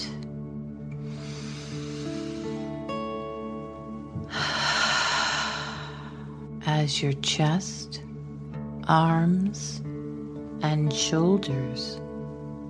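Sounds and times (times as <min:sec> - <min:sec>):
gentle musical drone: 0:00.0 - 0:12.6
deep breath in and out during a children's relaxation exercise: 0:00.9 - 0:02.9, 0:04.3 - 0:06.5
speech: 0:06.8 - 0:08.0, 0:08.9 - 0:09.9, 0:10.6 - 0:12.0.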